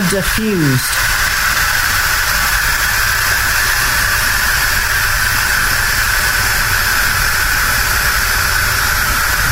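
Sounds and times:
steam hissing from a pressure cooker's release valve: 0.0 - 9.5
speech: 0.1 - 1.2.

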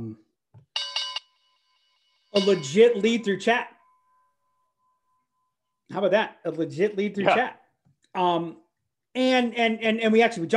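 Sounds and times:
bright bell ringing: 0.8 - 5.4
speech: 2.4 - 3.8, 5.9 - 7.6, 8.2 - 8.6, 9.2 - 10.5.

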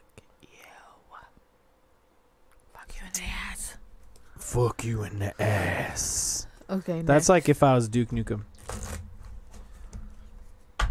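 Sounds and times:
low hum: 0.0 - 10.8
speech: 4.4 - 8.8
playing cards being shuffled during a drinking game: 8.5 - 9.9.

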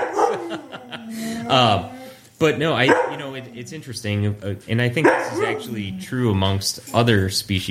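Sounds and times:
dog yapping: 0.0 - 0.6, 2.8 - 3.5, 5.0 - 5.7
laughter: 0.0 - 1.8
speech: 1.5 - 7.6.

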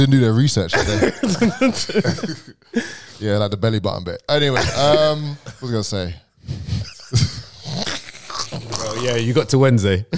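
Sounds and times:
speech: 0.0 - 7.3, 9.0 - 10.1
laughter: 0.7 - 2.9, 4.4 - 5.9, 6.6 - 7.6
dog growling low and rough: 7.4 - 9.2.

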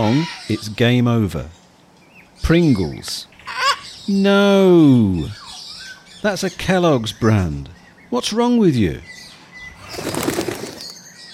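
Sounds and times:
speech: 0.0 - 1.6, 2.4 - 3.3, 4.1 - 5.4, 6.2 - 9.1, 9.9 - 10.3
parrot flapping its wings taking off on an island: 9.8 - 11.0.

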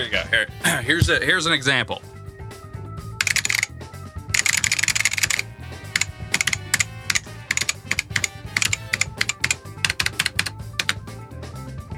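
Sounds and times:
speech: 0.3 - 2.2
hard finger-pecking typing on an old keyboard: 3.2 - 3.7, 4.4 - 11.0.

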